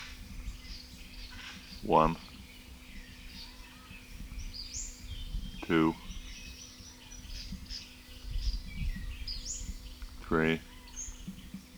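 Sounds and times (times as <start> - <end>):
Western Flycatcher chirping: 0.0 - 11.7
speech: 1.8 - 2.3, 5.7 - 6.0, 10.3 - 10.7.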